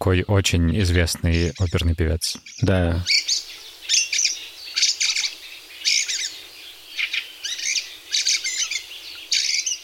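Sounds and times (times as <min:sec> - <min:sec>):
speech: 0:00.0 - 0:03.4
fieldfare song: 0:00.0 - 0:09.8.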